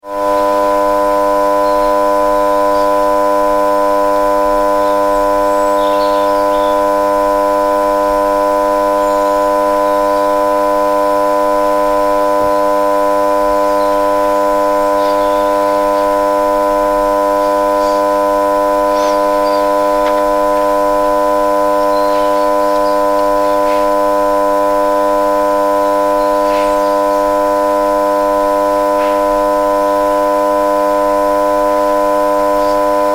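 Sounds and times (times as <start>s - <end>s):
small electronic alarm constant buzzing: 0.0s - 33.1s.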